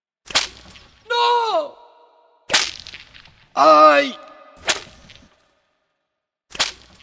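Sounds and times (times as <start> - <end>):
whip lashes cracking: 0.2 - 1.1, 2.5 - 3.4, 4.6 - 5.4, 6.5 - 7.0
speech: 3.6 - 4.2.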